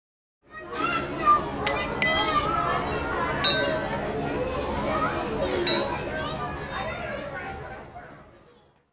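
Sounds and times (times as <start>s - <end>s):
murmur of chatter: 0.5s - 8.9s
plates, forks, knives, spoons and glasses clinking against a table: 1.7s - 4.4s, 5.7s - 6.3s.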